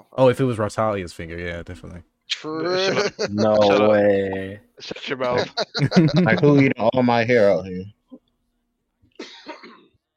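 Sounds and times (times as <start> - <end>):
speech: 0.1 - 8.0
laughter: 2.6 - 4.0, 5.1 - 6.9
harsh raspy cough: 9.2 - 10.0.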